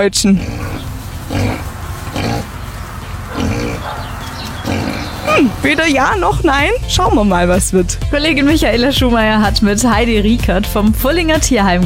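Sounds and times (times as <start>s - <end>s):
speech: 0.0s - 0.7s, 5.4s - 11.8s
mini pigs at an animal shelter grunting and squealing: 0.0s - 6.4s
steady rumble: 0.0s - 11.1s.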